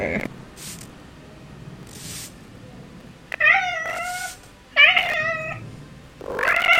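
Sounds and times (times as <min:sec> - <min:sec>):
speech: 0:00.0 - 0:00.4
cat meowing and caterwauling: 0:03.3 - 0:06.7.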